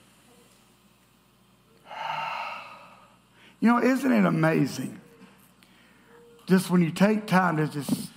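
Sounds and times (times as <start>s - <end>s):
group of people taking a deep breath in and out: 1.8s - 3.6s
speech: 3.6s - 5.0s, 6.5s - 8.0s.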